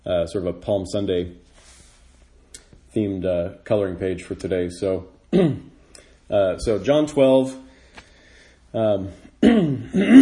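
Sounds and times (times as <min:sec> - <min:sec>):
speech: 0:00.1 - 0:01.5, 0:02.9 - 0:05.7, 0:06.3 - 0:07.6, 0:08.7 - 0:10.2
person clearing throat after breathing in pollen and sawdust: 0:05.3 - 0:05.8, 0:09.4 - 0:10.2.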